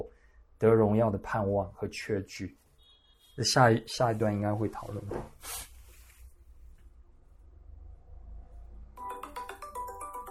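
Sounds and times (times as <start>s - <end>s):
speech: 0.6s - 2.6s, 3.4s - 5.7s
mobile phone ringtone for an incoming call: 9.0s - 10.2s.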